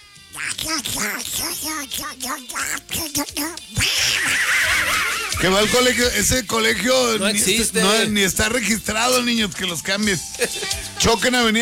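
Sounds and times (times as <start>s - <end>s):
man imitating a duck's voice with nasal buzzy quacks: 0.4s - 3.1s, 3.8s - 7.3s
speech: 0.4s - 11.5s
laughter: 3.9s - 7.6s, 10.4s - 11.3s.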